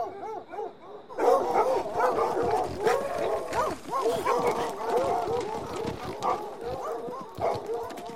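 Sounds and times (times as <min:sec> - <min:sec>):
pack of hunting dogs barking, howling and yelping: 0:00.0 - 0:08.1.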